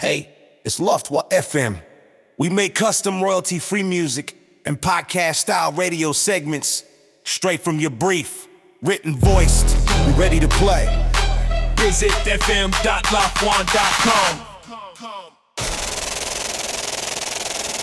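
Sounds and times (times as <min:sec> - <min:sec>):
voiceover: 0:00.0 - 0:01.8, 0:02.4 - 0:10.9, 0:11.8 - 0:15.3
upbeat boom bap hip hop music: 0:09.2 - 0:15.4.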